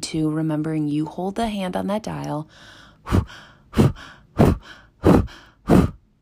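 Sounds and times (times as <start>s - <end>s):
speech: 0.1s - 5.4s
slow breaths blown out through the lips: 2.5s - 6.0s.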